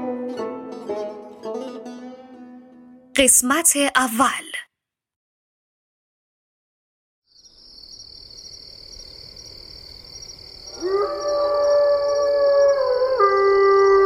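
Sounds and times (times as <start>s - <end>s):
speech: 3.2s - 4.5s
chorus of crickets chirping: 7.3s - 14.0s
wolf howling near a village: 10.7s - 14.0s.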